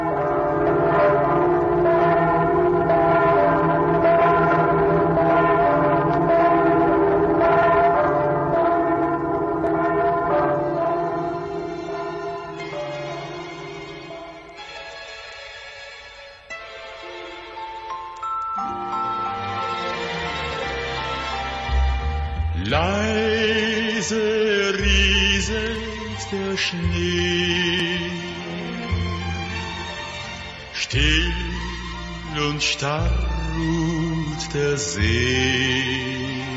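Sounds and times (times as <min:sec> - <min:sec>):
full peal of church bells ringing: 0:00.0 - 0:15.5, 0:16.7 - 0:36.5.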